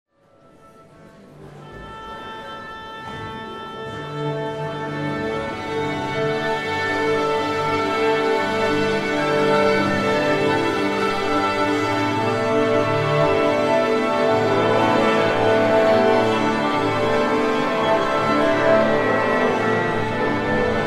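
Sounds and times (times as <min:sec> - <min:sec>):
symphony orchestra tuning up: 0:00.3 - 0:20.8.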